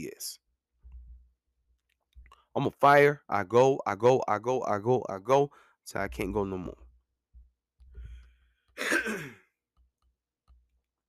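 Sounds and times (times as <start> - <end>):
speech: 2.6 - 6.8
faint breathy thuds: 7.8 - 8.6
harsh cough: 8.8 - 9.5.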